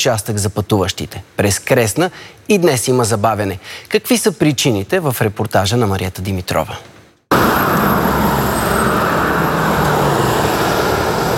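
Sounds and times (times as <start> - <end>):
speech: 0.0 - 6.9
heavy road traffic roar with engine rumble and tire noise: 7.3 - 11.3.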